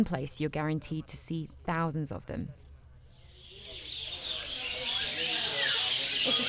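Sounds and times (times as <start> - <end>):
speech: 0.0 - 2.6
low murmur of indistinct voices: 2.6 - 6.4
many caged birds chirping and twittering at a wildlife market on Java: 3.1 - 6.4.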